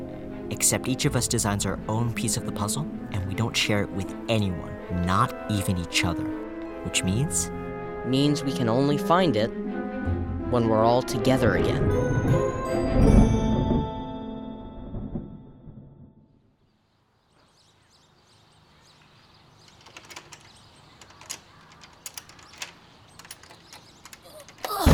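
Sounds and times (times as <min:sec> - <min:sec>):
speech: 0:00.5 - 0:13.3
clicks, rattles and knocks of movement: 0:19.6 - 0:24.9
stiff front door creaking open: 0:19.6 - 0:24.9.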